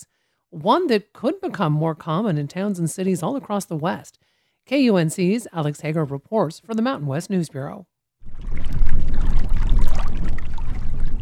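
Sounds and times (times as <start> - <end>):
speech: 0.0 - 8.7
constant low rumble of wind gusts: 8.2 - 11.2
irregular water splashes: 8.2 - 11.2
wind-blown small waves lapping against a small reservoir shore: 8.2 - 11.2.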